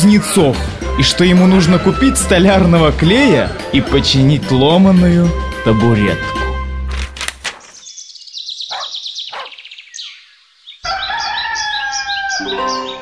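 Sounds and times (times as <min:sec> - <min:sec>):
speech: 0:00.0 - 0:06.4
rooster crowing: 0:10.8 - 0:12.6.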